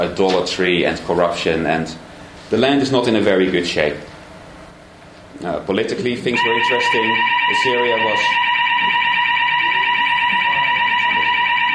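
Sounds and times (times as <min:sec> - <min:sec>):
speech: 0:00.0 - 0:04.1, 0:05.4 - 0:09.0
continuous electronic building fire alarm blaring: 0:06.3 - 0:11.7.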